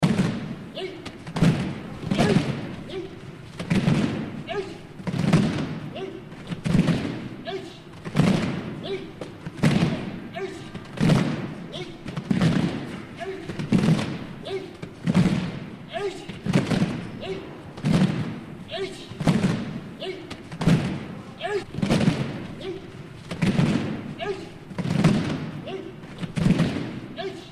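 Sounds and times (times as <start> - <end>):
judo training in Asia: 0.0 - 27.5.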